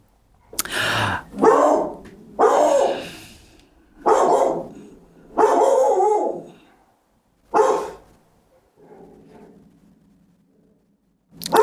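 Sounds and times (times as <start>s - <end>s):
dog barking sharply at a bigger dog in a park: 1.3s - 3.1s, 4.0s - 9.6s, 11.5s - 11.6s.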